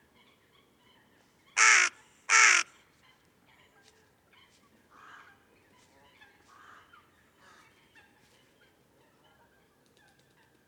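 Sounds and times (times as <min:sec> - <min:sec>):
carrion crow Corvus corone cawing: 0:01.6 - 0:02.7.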